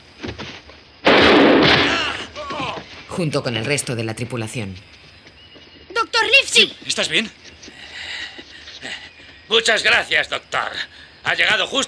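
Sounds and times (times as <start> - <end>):
single pistol shot fired in a fight: 1.0 - 2.1
speech: 3.2 - 5.0, 6.6 - 7.5, 9.5 - 11.8.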